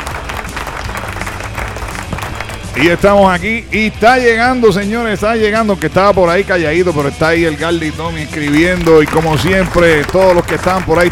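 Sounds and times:
canned crowd applause played as a sound effect: 0:00.0 - 0:02.9, 0:08.4 - 0:11.1
speech: 0:02.8 - 0:11.1.

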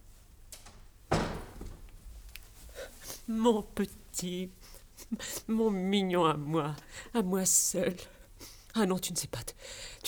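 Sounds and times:
horse-drawn carriage door shutting: 0:00.4 - 0:02.4
speech: 0:03.3 - 0:08.2, 0:08.8 - 0:10.0.

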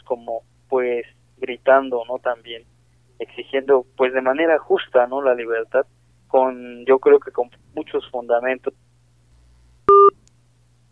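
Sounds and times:
speech: 0:00.1 - 0:08.8
telephone beep as a phone call cuts off: 0:09.9 - 0:10.2.

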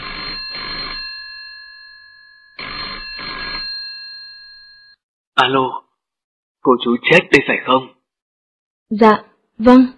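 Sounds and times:
telephone ringing with metallic trilling: 0:00.0 - 0:05.0
speech: 0:05.4 - 0:05.8, 0:06.6 - 0:08.0, 0:08.9 - 0:09.9.

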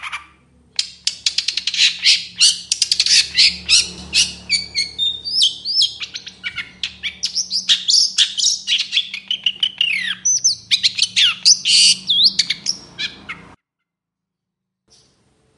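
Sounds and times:
long-tailed shrike singing in the morning: 0:00.0 - 0:13.6.

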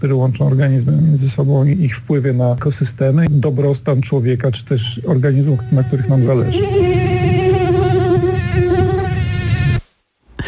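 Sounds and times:
speech: 0:00.0 - 0:06.9
mosquito buzzing: 0:05.4 - 0:09.9.

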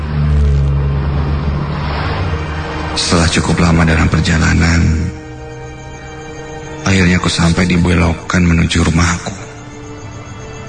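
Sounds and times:
vehicles passing along a road with engine and tire noise: 0:00.0 - 0:03.2
speech: 0:03.1 - 0:05.2, 0:06.8 - 0:09.4.

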